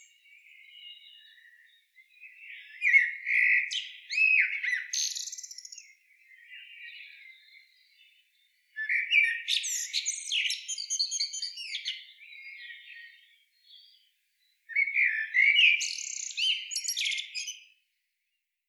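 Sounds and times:
common blackbird Turdus merula giving shrill twittering notes: 0:02.5 - 0:05.9, 0:08.8 - 0:12.0, 0:14.7 - 0:17.6.

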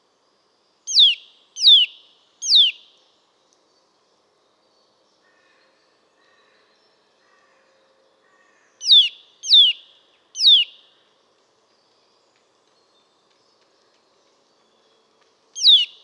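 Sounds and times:
Eurasian nuthatch Sitta europaea giving downward-sweeping piping calls: 0:00.9 - 0:02.8, 0:08.8 - 0:09.8, 0:10.4 - 0:10.7, 0:15.6 - 0:16.0.

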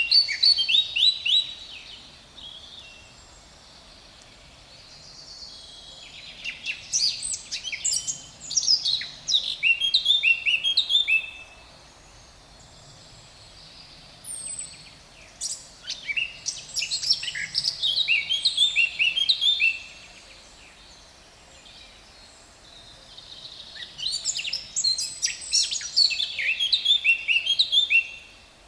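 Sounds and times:
Eurasian blackcap Sylvia atricapilla warbling song: 0:00.0 - 0:03.2, 0:04.2 - 0:11.6, 0:13.4 - 0:20.2, 0:23.2 - 0:28.4
quiet background hiss: 0:00.0 - 0:28.6.

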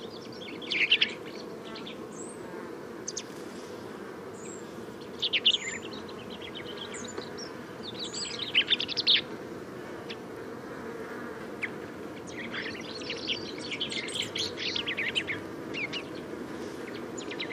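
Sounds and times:
common chaffinch chirping: 0:00.0 - 0:02.4, 0:04.4 - 0:09.3, 0:11.6 - 0:17.5.

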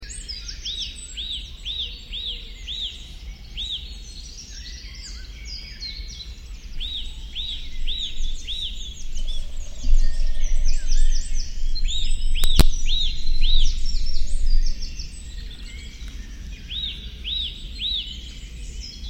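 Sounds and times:
Eurasian nuthatch Sitta europaea whistling calls: 0:00.1 - 0:19.0
low rumble: 0:06.6 - 0:16.3.

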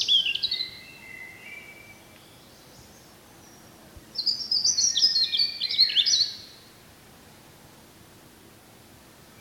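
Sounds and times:
European robin Erithacus rubecula song: 0:00.0 - 0:06.8
steady background noise: 0:00.0 - 0:09.4.

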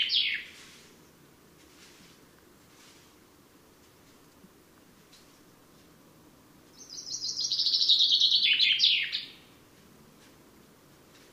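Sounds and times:
common chaffinch Fringilla coelebs song: 0:00.0 - 0:01.3, 0:05.2 - 0:10.4.

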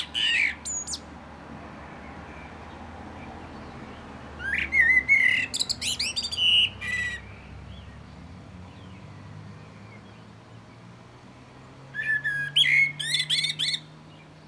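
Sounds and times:
common blackbird singing: 0:00.0 - 0:01.2, 0:02.0 - 0:09.1, 0:12.0 - 0:14.4.

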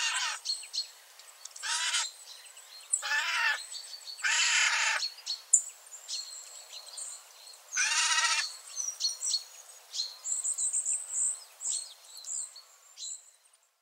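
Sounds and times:
Eurasian jay harsh rasping screeches: 0:00.0 - 0:00.4, 0:01.6 - 0:02.1, 0:03.0 - 0:03.6, 0:04.2 - 0:05.0, 0:07.8 - 0:08.5.

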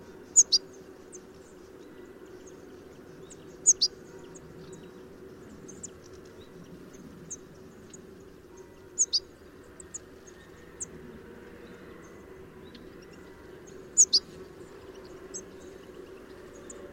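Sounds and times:
persistent low hum: 0:00.0 - 0:16.9
European goldfinch Carduelis carduelis chirping: 0:00.2 - 0:10.8, 0:11.6 - 0:16.9.

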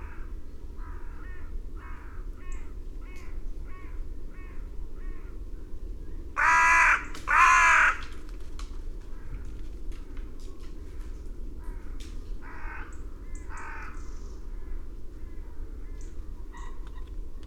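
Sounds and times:
carrion crow cawing: 0:00.0 - 0:05.3, 0:06.4 - 0:08.2, 0:11.6 - 0:14.1.

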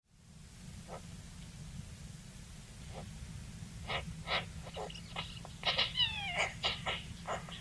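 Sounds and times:
Eurasian magpie Pica pica giving harsh scratchy notes: 0:03.9 - 0:07.6.

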